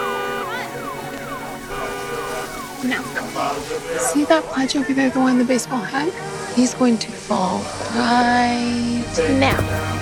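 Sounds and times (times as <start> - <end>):
car alarm wailing: 0.0 - 4.4
speech: 2.8 - 9.9.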